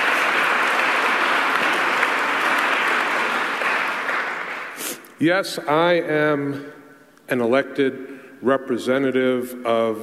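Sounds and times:
applause from a large audience: 0.0 - 4.9
speech: 5.2 - 10.0.

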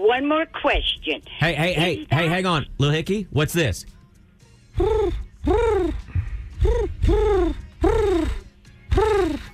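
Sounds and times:
speech: 0.0 - 4.0, 6.6 - 7.6
human voice imitating a dove with rounded hooting coos: 4.8 - 9.5.

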